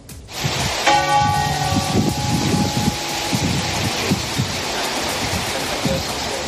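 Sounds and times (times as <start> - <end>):
steady wash of rain-like noise: 0.0 - 6.4
church bells of the main churches of London pealing outdoors: 0.9 - 5.2
low rumbling: 0.9 - 5.7.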